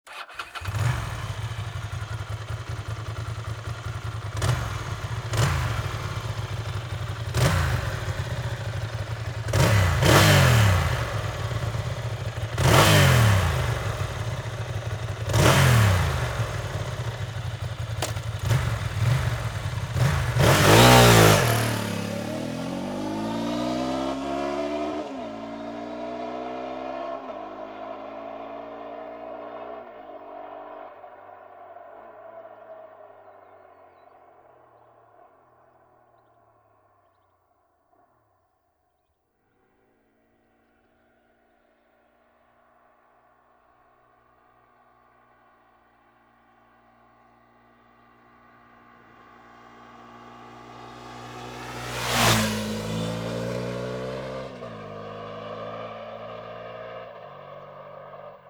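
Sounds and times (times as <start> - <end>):
Ducati ST2 motorcycle engine: 0.0 - 30.8, 47.2 - 58.4.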